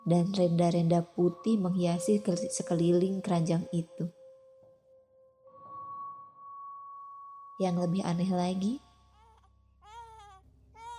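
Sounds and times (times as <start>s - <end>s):
speech: 0.1s - 4.2s, 7.6s - 8.9s
baby crying: 9.1s - 10.9s.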